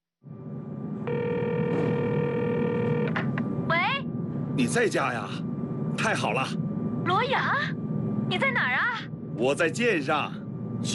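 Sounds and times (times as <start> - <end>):
steady low hum: 0.2 - 10.9
telephone ringing for an incoming call: 1.1 - 3.2
speech: 4.6 - 10.9.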